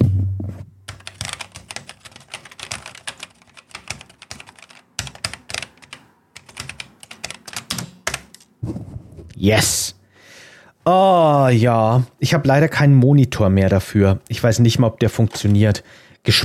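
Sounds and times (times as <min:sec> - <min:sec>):
brisk typing on a vintage home computer keyboard: 0:00.9 - 0:08.5
speech: 0:09.4 - 0:10.0, 0:10.9 - 0:16.4.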